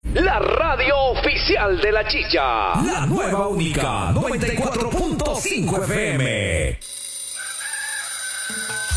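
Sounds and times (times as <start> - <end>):
speech: 0.2 - 7.0
rooster crowing: 7.3 - 8.9.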